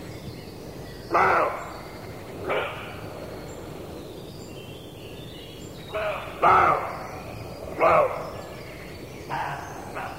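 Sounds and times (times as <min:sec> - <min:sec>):
faint background hiss: 0:00.0 - 0:10.1
male roe deer roebuck giving rough hoarse barks: 0:01.1 - 0:01.7, 0:02.4 - 0:03.1, 0:05.9 - 0:07.0, 0:07.7 - 0:08.4, 0:09.3 - 0:10.1.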